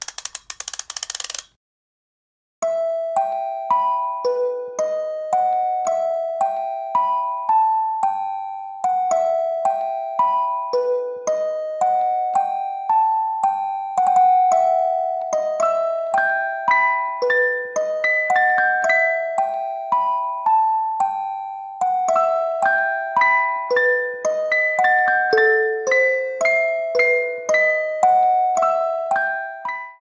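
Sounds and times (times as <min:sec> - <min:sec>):
music box with metal discs: 0:00.0 - 0:01.4, 0:03.2 - 0:30.0.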